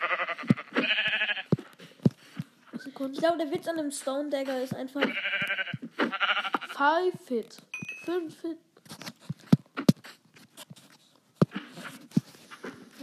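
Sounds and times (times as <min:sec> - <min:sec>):
buzzy video game sheep bleats when struck with a sword: 0:00.0 - 0:01.5, 0:05.0 - 0:06.8
speech: 0:03.0 - 0:05.6, 0:06.8 - 0:08.7.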